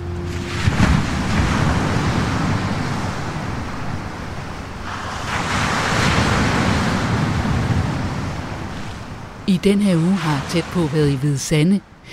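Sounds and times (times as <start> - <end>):
sea waves breaking on the coast at a small town in winter: 0.0 - 12.1
gusty wind buffeting the microphone: 0.3 - 9.5
speech: 9.5 - 12.1.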